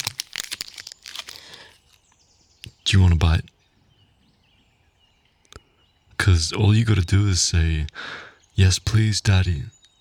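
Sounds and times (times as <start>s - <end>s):
chocolate bar wrapper crinkling while being unwrapped: 0.0s - 2.2s
speech: 2.9s - 3.6s, 6.4s - 9.8s.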